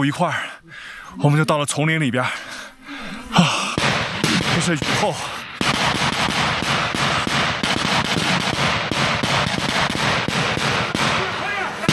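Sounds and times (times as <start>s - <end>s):
speech: 0.0s - 2.6s, 4.6s - 5.4s
very dense gunfire in a jungle after rain: 3.7s - 11.9s.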